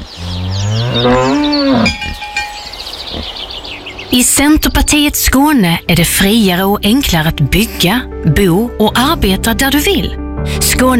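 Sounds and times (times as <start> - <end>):
cattle mooing in the countryside: 0.0 - 2.3
speech: 1.0 - 2.0, 4.2 - 10.9.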